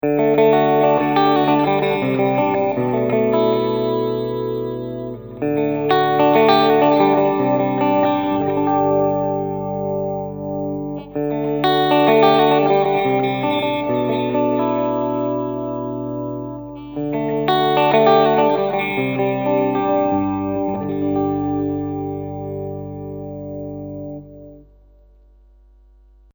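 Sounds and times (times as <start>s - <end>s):
clean electric guitar on bridge and neck pickups: 0.0s - 25.0s.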